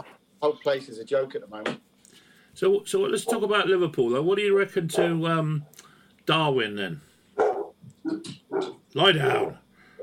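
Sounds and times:
speech: 0.4 - 1.9, 2.6 - 7.1, 8.1 - 9.6
dog barking: 3.2 - 3.5, 4.9 - 5.3, 7.4 - 8.8, 9.4 - 10.0.

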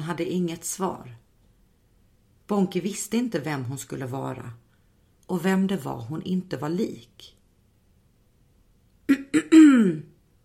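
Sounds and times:
speech: 0.0 - 1.2, 2.5 - 4.6, 5.3 - 7.4, 9.1 - 10.1
throat clearing: 9.1 - 10.1.

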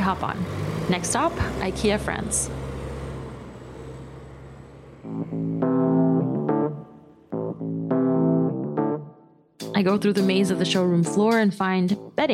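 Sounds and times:
bus engine roaring as the bus arrives at a stop in France: 0.0 - 8.8
speech: 0.1 - 2.7, 9.8 - 12.3.

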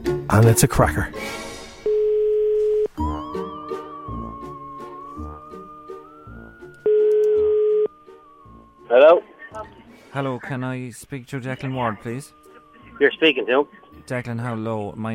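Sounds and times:
speech: 0.3 - 1.5, 10.2 - 15.1
phone line ringback tones: 1.9 - 2.9, 6.8 - 7.9.

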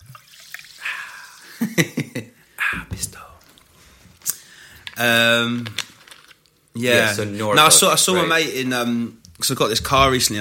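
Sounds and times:
seltzer water fizzing: 0.0 - 1.8
person sipping seltzer water: 0.1 - 1.6, 2.6 - 4.8
speech: 5.0 - 5.8, 6.8 - 10.3.

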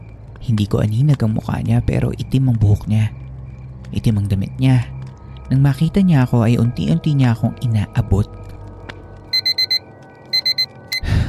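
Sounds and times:
speech: 0.4 - 3.2, 3.9 - 8.5
alarm clock beeping in shrill tones: 9.3 - 11.1.

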